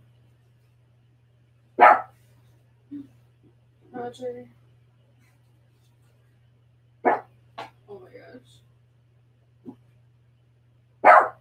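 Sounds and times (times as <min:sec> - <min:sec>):
steady low hum: 0:00.0 - 0:11.3
dog barking: 0:01.8 - 0:02.2, 0:07.0 - 0:07.3, 0:11.0 - 0:11.3
speech: 0:04.1 - 0:04.6.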